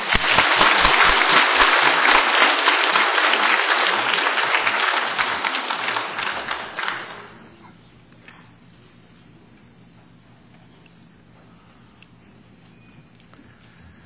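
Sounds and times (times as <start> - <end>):
large audience clapping hands in applause: 0.0 - 7.6.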